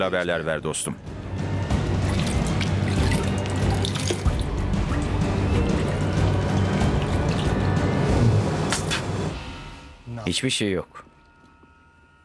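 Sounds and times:
speech: 0:00.0 - 0:01.5, 0:10.3 - 0:11.1
fresh water dripping in a hollow: 0:01.7 - 0:08.0
soft flowing water: 0:01.7 - 0:09.2.

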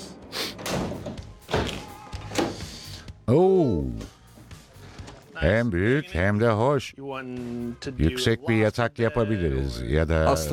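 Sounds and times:
camper van doors being opened with solid thunks and clunks: 0:00.6 - 0:02.8
speech: 0:03.3 - 0:04.1, 0:05.4 - 0:10.5.

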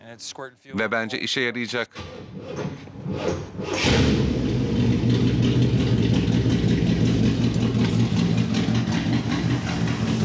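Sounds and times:
speech: 0:00.1 - 0:05.3
carburetor car engine idling at about 600 rpm: 0:02.8 - 0:10.2.

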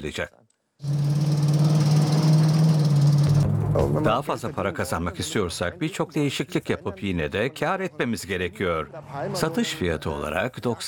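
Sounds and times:
speech: 0:00.0 - 0:01.0, 0:03.8 - 0:10.8
Plymouth Cuda muscle car engine idling: 0:00.8 - 0:04.1.

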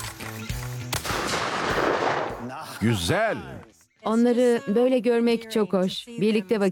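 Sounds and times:
gunshot while shooting at launched targets: 0:00.9 - 0:02.6
speech: 0:02.8 - 0:06.7.

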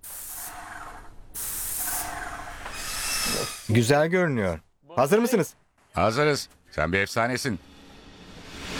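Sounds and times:
sprayer hissing blast in a test burst: 0:00.0 - 0:03.7
speech: 0:03.7 - 0:07.7.

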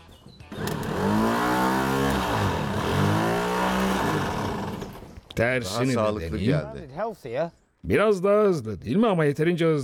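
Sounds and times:
directly wired car starter motor cranking the engine: 0:00.5 - 0:05.2
speech: 0:05.4 - 0:09.8.

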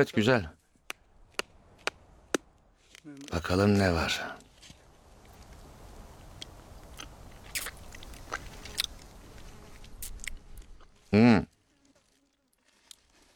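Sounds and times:
speech: 0:00.0 - 0:00.6, 0:03.3 - 0:04.4, 0:11.1 - 0:11.5
crisp biting and chewing of a fruit: 0:06.4 - 0:09.1, 0:09.8 - 0:13.3.

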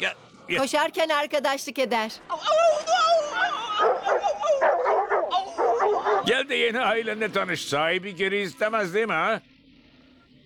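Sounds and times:
speech: 0:00.0 - 0:03.9, 0:06.3 - 0:09.6
dog whimpering in high wavering whines: 0:02.5 - 0:06.3
dog yipping and barking: 0:03.7 - 0:06.4.

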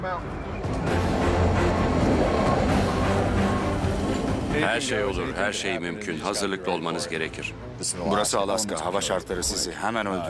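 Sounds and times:
speech: 0:00.0 - 0:00.4, 0:04.6 - 0:10.2
train rolling along the rails: 0:00.2 - 0:05.6.

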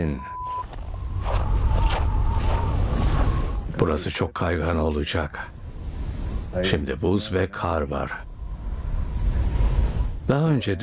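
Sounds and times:
speech: 0:00.0 - 0:00.4, 0:03.8 - 0:05.6, 0:06.5 - 0:08.3, 0:10.3 - 0:10.8
strong wind roaring by icy water: 0:00.8 - 0:03.9, 0:05.4 - 0:10.6.

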